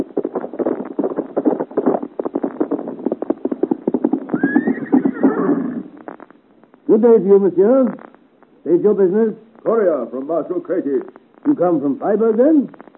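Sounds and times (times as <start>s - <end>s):
horse hooves galloping on a road: 0.0s - 6.3s
horse whinny: 4.3s - 5.9s
speech: 6.9s - 8.0s, 8.6s - 12.8s.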